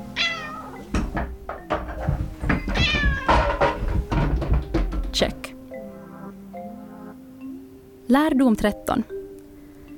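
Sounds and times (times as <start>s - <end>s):
cat meowing: 0.1s - 0.8s, 2.8s - 3.5s
knocks and thuds of something being bumped: 0.9s - 5.4s
speech: 5.2s - 5.4s, 8.1s - 9.2s.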